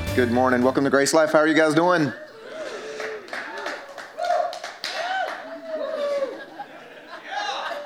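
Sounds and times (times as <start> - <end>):
speech: 0.2 - 2.3
laughter: 1.8 - 7.8
crowd clapping: 2.6 - 6.0.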